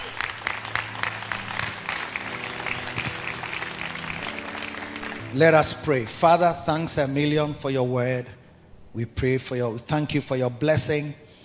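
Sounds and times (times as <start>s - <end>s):
crowd at a church service applauding: 0.0s - 5.8s
speech: 5.3s - 8.4s, 9.0s - 11.2s.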